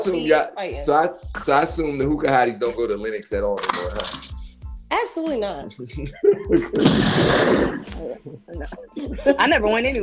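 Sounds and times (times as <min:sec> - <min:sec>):
speech: 0:00.0 - 0:04.4, 0:05.0 - 0:10.0
laughter: 0:06.0 - 0:07.0
gunshot sound effect: 0:06.8 - 0:08.0.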